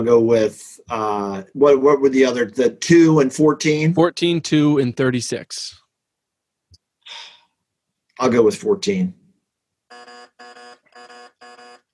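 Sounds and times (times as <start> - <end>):
speech: 0.0 - 5.8, 8.2 - 9.2
quiz game buzzer: 9.9 - 11.9.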